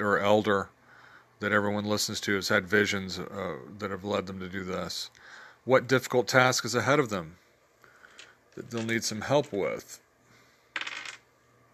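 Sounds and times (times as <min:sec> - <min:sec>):
speech: 0:00.0 - 0:00.8, 0:01.4 - 0:07.4, 0:08.6 - 0:10.0
faint low hum: 0:00.0 - 0:11.7
dice tumbling across a hard tabletop: 0:10.7 - 0:11.3.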